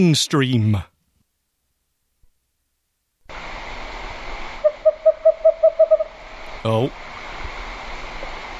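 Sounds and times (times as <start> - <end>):
speech: 0.0 - 0.9, 6.6 - 7.0
constant hiss: 0.0 - 8.5
owl hooting: 4.6 - 6.2.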